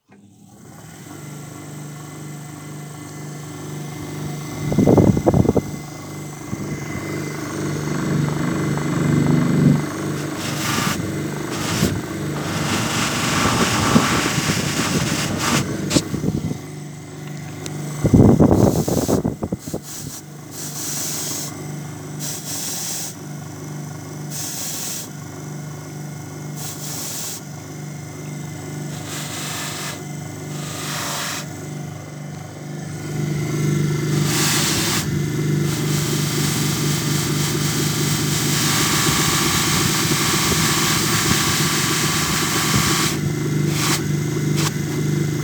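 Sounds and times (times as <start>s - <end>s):
automated shoe-polishing machine brush: 4.0s - 16.7s, 18.1s - 21.6s, 22.2s - 23.2s, 24.3s - 25.2s, 26.6s - 27.5s, 28.8s - 31.8s, 32.8s - 45.1s.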